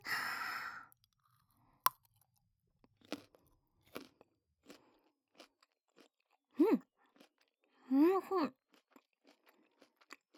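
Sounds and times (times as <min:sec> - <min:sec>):
breathy sigh: 0:00.0 - 0:00.9
crisp crunching bites and chewing of a raw carrot: 0:02.8 - 0:07.8, 0:08.5 - 0:10.3.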